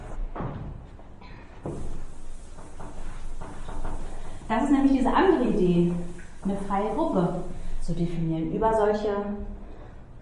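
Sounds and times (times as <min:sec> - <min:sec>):
steady room hiss: 0:01.5 - 0:09.6
chalkboard being wiped: 0:01.6 - 0:08.3
speech: 0:04.5 - 0:09.5.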